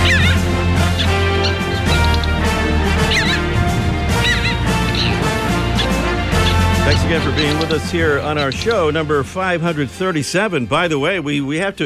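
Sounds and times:
Stercorarius parasiticus parasitic jaeger calling: 0.0s - 9.0s
speech: 7.1s - 11.8s.

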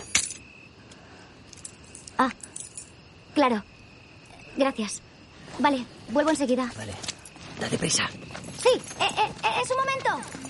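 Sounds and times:
tossed keys jangling: 1.5s - 3.0s, 8.3s - 10.4s
speech: 2.2s - 2.5s, 3.4s - 3.7s, 4.6s - 10.4s.

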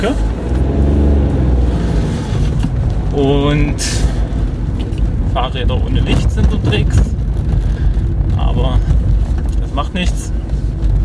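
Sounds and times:
speech: 0.0s - 0.3s, 3.2s - 4.2s, 5.4s - 7.2s, 8.5s - 8.9s, 9.8s - 10.4s
car engine rumbling outdoors while driving past: 0.0s - 11.0s.

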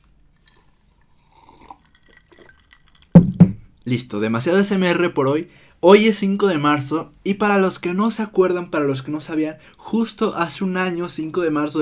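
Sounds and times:
ice cubes knocking against a glass: 0.4s - 3.4s
speech: 3.9s - 11.8s.

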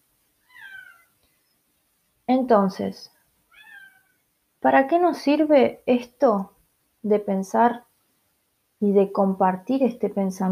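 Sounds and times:
cat meowing: 0.5s - 1.1s, 3.5s - 4.2s
speech: 2.3s - 3.2s, 4.6s - 7.9s, 8.8s - 10.5s.

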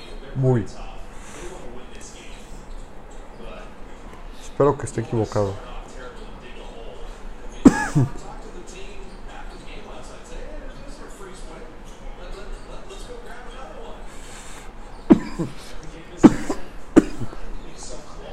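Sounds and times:
faint talk: 0.0s - 18.3s
speech: 0.4s - 0.9s, 4.6s - 5.7s, 8.0s - 8.3s
person having a coughing fit: 7.6s - 8.2s, 15.1s - 17.4s.

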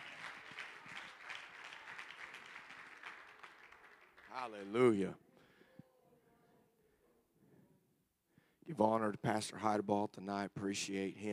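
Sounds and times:
congregation clapping hands together: 0.0s - 4.9s
speech: 4.4s - 5.2s, 8.8s - 11.3s.

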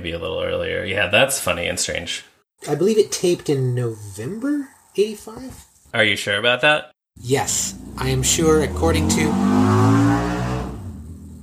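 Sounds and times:
speech: 0.0s - 10.0s
motorcycle engine revving as it rides away: 7.3s - 11.4s.

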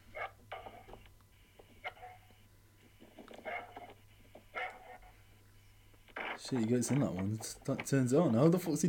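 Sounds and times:
dog barking: 3.4s - 3.9s, 4.5s - 5.2s
speech: 6.4s - 8.8s.

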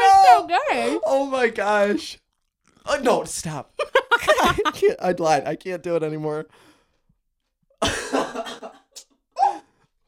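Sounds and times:
speech: 0.7s - 2.2s, 2.8s - 6.7s
person coughing harshly: 7.8s - 8.8s.

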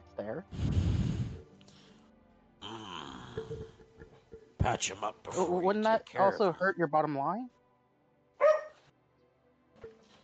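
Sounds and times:
speech: 0.2s - 1.1s, 4.6s - 7.6s
dog barking in a forest: 8.4s - 8.8s.

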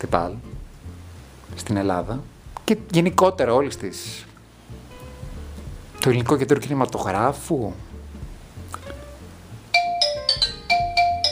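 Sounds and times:
speech: 0.0s - 0.5s, 1.5s - 4.3s, 6.0s - 7.9s
telephone ringing with melodic electronic tone: 9.8s - 11.3s.

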